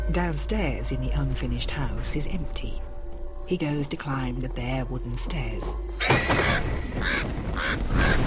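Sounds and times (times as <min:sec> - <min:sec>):
speech: 0:00.1 - 0:02.9, 0:03.5 - 0:08.2
crow cawing while flying past: 0:06.0 - 0:08.2.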